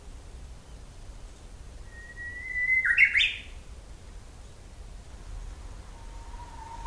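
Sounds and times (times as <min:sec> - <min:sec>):
Japanese bush warbler drawn-out whistle with rising twisting flourish: 0:01.8 - 0:03.5, 0:05.7 - 0:06.8.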